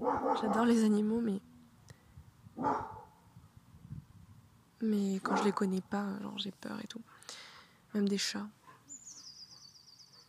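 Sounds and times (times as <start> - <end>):
dog barking: 0.0 - 0.7, 2.6 - 3.2, 5.3 - 5.6
speech: 0.1 - 1.5, 2.6 - 3.0, 4.8 - 8.6.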